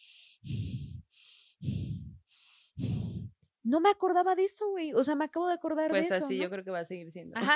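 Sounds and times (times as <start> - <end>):
person imitating heavy breathing: 0.0 - 3.4
speech: 3.7 - 7.5.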